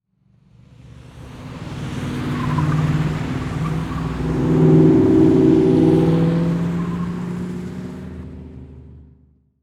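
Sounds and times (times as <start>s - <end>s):
race car driving by through a big turn: 1.6s - 8.6s.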